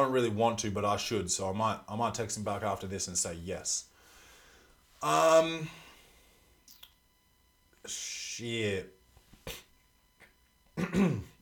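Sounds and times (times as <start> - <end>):
speech: 0.0 - 3.9, 5.0 - 5.8, 7.8 - 9.6, 10.8 - 11.3
throat clearing from phlegm left after a cold: 10.8 - 11.3.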